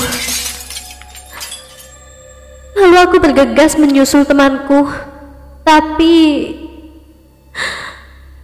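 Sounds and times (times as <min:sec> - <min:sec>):
glass cabinet shattering as a doll is thrown into it: 0:00.0 - 0:02.1
glass shards tinkling and scattering: 0:00.0 - 0:02.5
speech: 0:03.0 - 0:05.1, 0:05.7 - 0:06.6.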